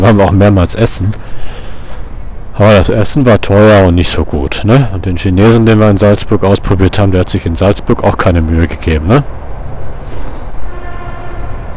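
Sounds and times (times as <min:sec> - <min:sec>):
speech: 0:00.1 - 0:01.5, 0:02.6 - 0:09.4
train wheels rumbling on track: 0:08.6 - 0:11.7
train horn shrieks: 0:10.6 - 0:11.7.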